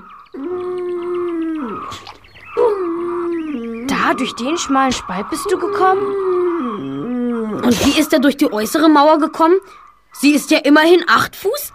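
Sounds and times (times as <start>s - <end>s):
dog howling: 0.4s - 7.7s
speech: 4.1s - 6.3s, 7.7s - 11.7s.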